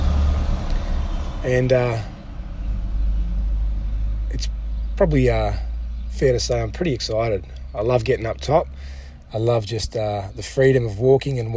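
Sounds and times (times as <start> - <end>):
heavy truck driving past on a road: 0.0 - 4.9
speech: 1.4 - 2.1, 4.3 - 11.5.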